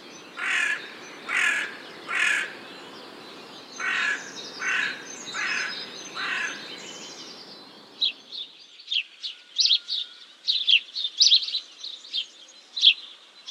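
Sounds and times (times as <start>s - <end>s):
faint noise: 0.0s - 13.4s
crow cawing: 0.4s - 2.6s, 3.8s - 6.8s.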